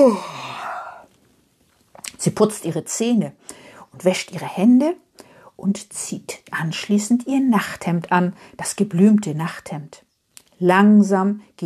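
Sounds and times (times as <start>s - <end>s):
speech: 0.0s - 0.3s, 2.2s - 10.0s, 10.6s - 11.6s
person imitating a very tired woman yawning: 0.0s - 1.1s.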